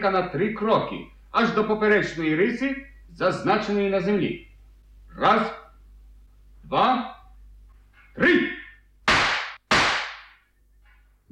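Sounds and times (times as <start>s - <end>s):
speech: 0.0s - 4.5s, 5.2s - 5.6s, 6.7s - 7.2s, 8.2s - 8.6s
pistol shots in a duel, one fired upward: 9.1s - 10.4s.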